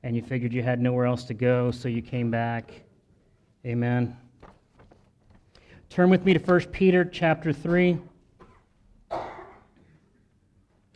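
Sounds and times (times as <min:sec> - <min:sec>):
speech: 0:00.1 - 0:02.9, 0:03.6 - 0:04.2, 0:05.9 - 0:08.1
people coughing: 0:08.4 - 0:10.0.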